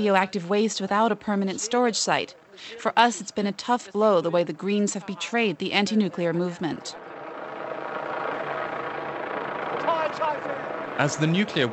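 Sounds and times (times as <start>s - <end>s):
speech: 0.0s - 7.1s, 11.0s - 11.7s
police helicopter flying overhead guarding a nuclear waste transport: 0.0s - 11.7s.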